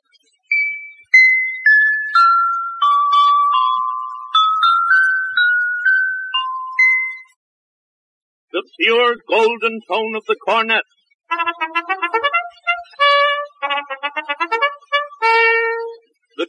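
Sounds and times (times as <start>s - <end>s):
orchestra bells glockenspiel playing a bright unaccompanied melody: 0.5s - 7.4s, 11.3s - 16.0s
speech: 8.8s - 12.0s.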